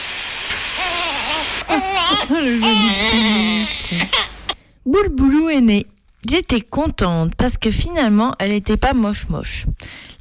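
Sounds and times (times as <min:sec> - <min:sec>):
steady hissing background: 0:00.0 - 0:04.6
newborn baby crying: 0:00.8 - 0:04.6
speech: 0:01.7 - 0:10.1.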